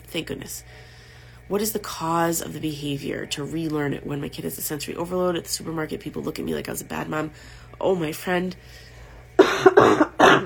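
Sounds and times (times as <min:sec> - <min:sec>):
speech: 0:00.1 - 0:08.9, 0:09.5 - 0:10.4
harsh rattly coughs: 0:09.4 - 0:10.4.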